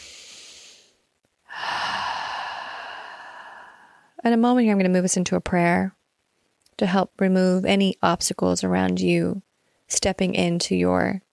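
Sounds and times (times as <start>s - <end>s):
deep breath: 0.0s - 4.2s
speech: 4.2s - 6.0s, 6.8s - 11.2s.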